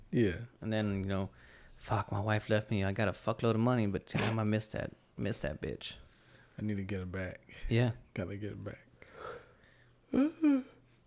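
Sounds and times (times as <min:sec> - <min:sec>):
speech: 0:00.1 - 0:06.0, 0:06.6 - 0:08.9, 0:10.1 - 0:10.7
man yawning: 0:10.1 - 0:10.8.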